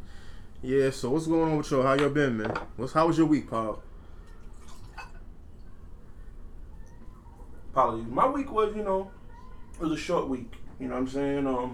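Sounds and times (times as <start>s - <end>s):
low steady hum: 0.0s - 11.7s
speech: 0.6s - 3.9s, 7.8s - 9.2s, 9.8s - 11.7s
drink being poured into a glass: 4.3s - 5.3s.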